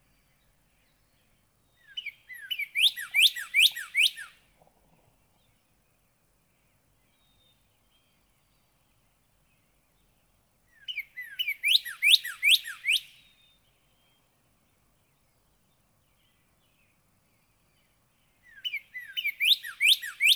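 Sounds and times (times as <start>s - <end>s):
Northern cardinal song of bright slurred whistled notes: 1.8s - 4.4s, 10.7s - 14.2s, 18.4s - 20.3s.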